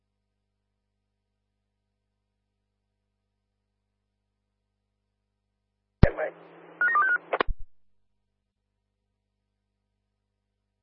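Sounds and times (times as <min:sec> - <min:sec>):
telephone keypad dialing tones: 0:06.8 - 0:07.2
sharp clicks: 0:07.3 - 0:07.6.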